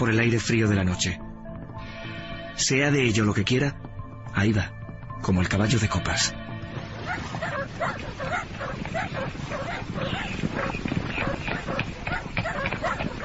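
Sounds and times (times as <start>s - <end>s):
speech: 0.0s - 1.3s, 2.6s - 6.4s
hunting dogs barking and yelping on a mountain at nightfall: 6.8s - 13.2s.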